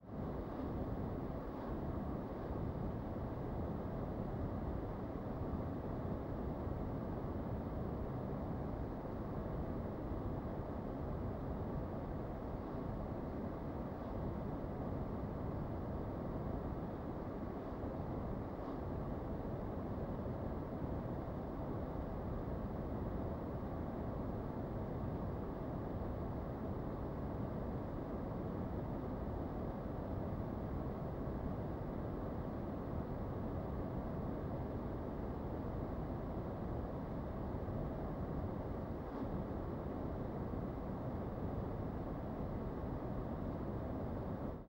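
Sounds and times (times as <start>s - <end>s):
air conditioner: 0.0s - 44.6s.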